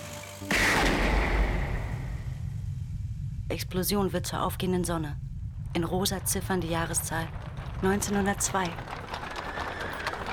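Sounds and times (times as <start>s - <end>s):
low hum: 0.5s - 10.3s
speech: 3.6s - 9.0s.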